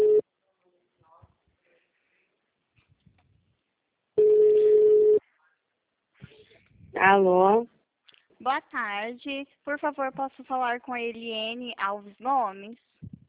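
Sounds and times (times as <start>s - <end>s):
telephone ringback tones of an outgoing call: 0.0s - 0.2s, 4.2s - 5.2s
speech: 7.1s - 7.7s, 8.4s - 12.9s.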